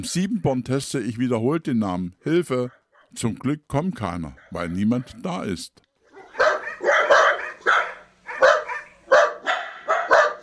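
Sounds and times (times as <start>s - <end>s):
speech: 0.0s - 5.8s
small dachshund barking: 4.4s - 5.2s, 6.1s - 10.4s.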